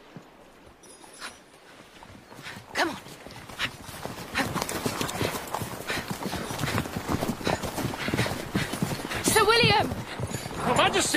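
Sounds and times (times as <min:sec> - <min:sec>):
horse hooves clip-clopping under a rider seated astride: 0:00.0 - 0:11.1.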